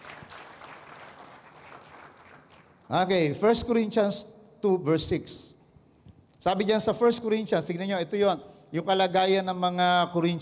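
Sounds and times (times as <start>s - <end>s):
audience applauding: 0.0s - 2.9s
speech: 2.9s - 5.6s, 6.4s - 10.4s.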